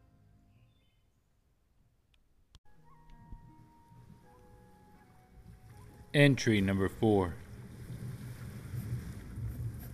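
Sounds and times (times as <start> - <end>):
wind in a violent storm at sea: 0.0 - 9.9
speech: 6.1 - 7.4
rain in a violent storm at sea: 7.4 - 9.9
thunder rumbling in a storm at sea: 7.4 - 9.9.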